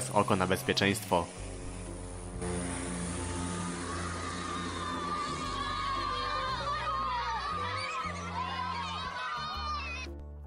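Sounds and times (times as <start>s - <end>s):
speech: 0.1s - 1.5s
low aircraft engine roaring: 1.3s - 7.5s
children shouting excitedly: 3.3s - 10.2s.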